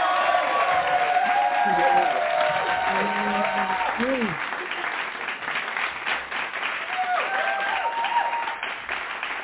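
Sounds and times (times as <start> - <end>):
people calling out and cheering: 0.0 - 4.9, 6.7 - 9.4
audience applause: 0.0 - 9.4.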